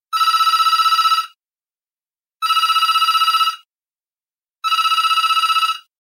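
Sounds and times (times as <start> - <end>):
classic dialed telephone ringtone: 0.1 - 1.4, 2.4 - 3.7, 4.6 - 5.9.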